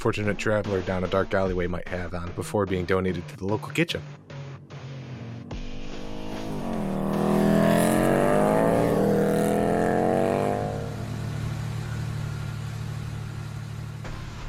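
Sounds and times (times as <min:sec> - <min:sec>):
speech: 0:00.0 - 0:04.3
chopper motorcycle engine revving into a loud roar: 0:04.0 - 0:14.4
low steady rumble: 0:10.2 - 0:14.4.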